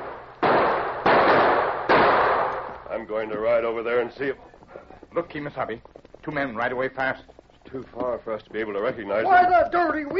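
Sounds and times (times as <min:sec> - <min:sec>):
gunshots fired from a gully, radio drama sound effect: 0:00.0 - 0:02.9
speech: 0:03.0 - 0:10.1.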